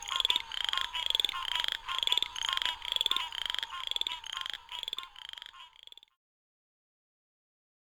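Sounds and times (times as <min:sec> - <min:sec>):
southern chorus frog rasping pulsed trills: 0:00.0 - 0:06.1.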